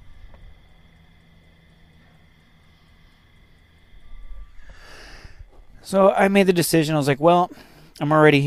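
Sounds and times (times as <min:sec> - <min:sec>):
low rumbling hum heard from a truck's sleeper berth: 0:00.0 - 0:08.0
chorus of insects buzzing outside at night: 0:00.0 - 0:08.4
speech: 0:05.9 - 0:08.4.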